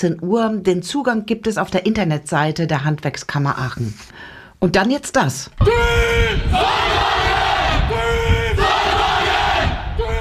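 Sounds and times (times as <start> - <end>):
speech: 0.0 - 7.1
student solar car team shouting a battle cry in unison: 5.6 - 10.2.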